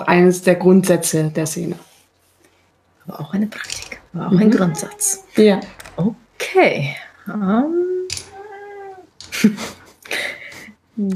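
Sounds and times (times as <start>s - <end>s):
speech: 0.1s - 1.9s, 3.1s - 7.9s, 9.4s - 9.8s, 11.0s - 11.1s
male cat meowing: 8.3s - 9.1s.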